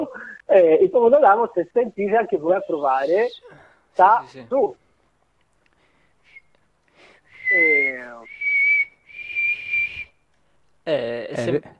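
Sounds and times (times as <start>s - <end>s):
speech: 0.0s - 4.8s, 7.5s - 8.4s, 10.9s - 11.7s
person whistling: 0.1s - 0.4s, 6.2s - 6.6s, 7.3s - 10.2s.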